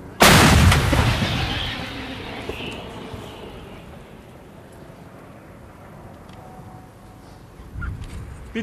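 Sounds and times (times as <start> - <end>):
artillery gun shot booming: 0.2 - 4.0.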